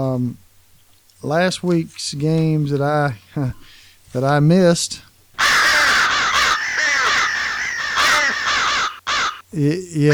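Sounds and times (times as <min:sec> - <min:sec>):
speech: 0:00.0 - 0:00.4, 0:01.2 - 0:05.1, 0:09.5 - 0:10.1
crow cawing: 0:05.4 - 0:09.5.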